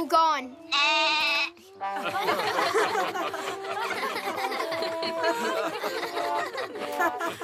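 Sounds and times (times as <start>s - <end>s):
goat bleating on a theatre stage: 0.7s - 1.6s
audience laughter: 1.8s - 7.4s.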